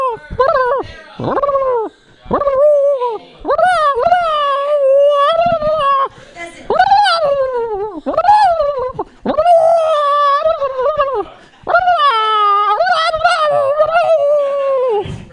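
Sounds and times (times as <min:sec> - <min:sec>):
person imitating a wolf howl: 0:00.0 - 0:06.1, 0:06.7 - 0:15.0
laughter: 0:00.0 - 0:15.1
breaths between howls: 0:00.8 - 0:01.2, 0:01.8 - 0:02.3, 0:06.1 - 0:06.7, 0:11.3 - 0:11.7
speech: 0:01.2 - 0:01.5.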